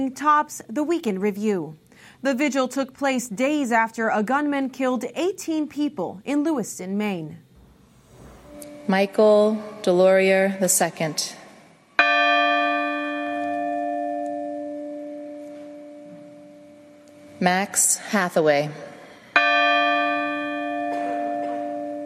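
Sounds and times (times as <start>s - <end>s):
speech: 0.0s - 7.4s, 8.9s - 11.4s, 17.4s - 18.9s
deep church bell tolling at a vigil outside a basilica: 8.5s - 10.0s, 12.0s - 18.0s, 18.7s - 22.0s.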